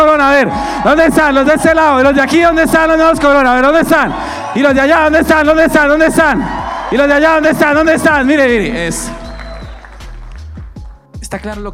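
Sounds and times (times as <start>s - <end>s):
voices whooping: 0.0s - 10.1s
crowd cheering and shouting: 0.0s - 10.4s
speech: 0.4s - 9.2s, 11.3s - 11.7s
clapping: 6.2s - 10.9s.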